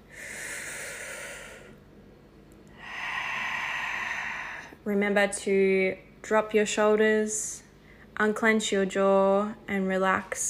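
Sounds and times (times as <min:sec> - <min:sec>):
deep breath in and out: 0:00.0 - 0:01.8, 0:02.7 - 0:04.8
speech: 0:04.8 - 0:07.6, 0:08.2 - 0:10.4.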